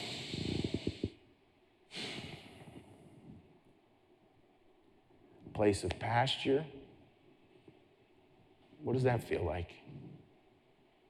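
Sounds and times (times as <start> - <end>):
deep breath taken during a guided reflection: 0.0 - 1.3, 1.9 - 3.6
speech: 5.6 - 6.8, 8.9 - 10.1.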